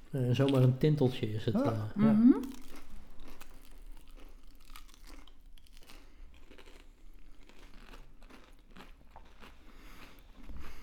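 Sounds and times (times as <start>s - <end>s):
speech: 0.1s - 2.6s
chewing crispy crust: 0.3s - 0.8s, 2.4s - 10.8s
person biting into a crispy crust: 2.4s - 10.8s.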